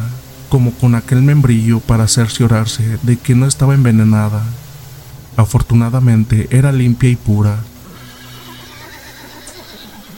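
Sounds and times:
low rumbling background: 0:00.0 - 0:09.7
speech: 0:00.5 - 0:04.6, 0:05.4 - 0:07.7
horse neighing nervously: 0:07.8 - 0:10.1.

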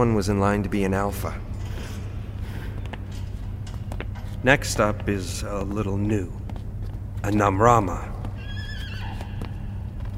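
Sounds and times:
speech: 0:00.0 - 0:01.5, 0:04.4 - 0:06.4, 0:07.2 - 0:08.2
low steady rumble: 0:00.0 - 0:10.1
hooves clopping on hard ground: 0:02.3 - 0:10.1
horse whinnying with a wavering high-pitched call: 0:08.4 - 0:09.7.

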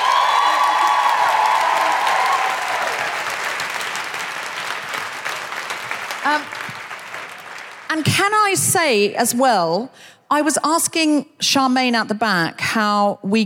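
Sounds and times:
audience applause: 0:00.0 - 0:08.0
speech: 0:08.0 - 0:13.4.

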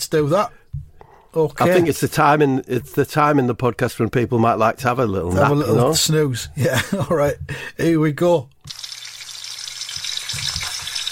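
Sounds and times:
speech: 0:00.1 - 0:08.6
sausages sizzling in a frying pan: 0:08.7 - 0:11.1.

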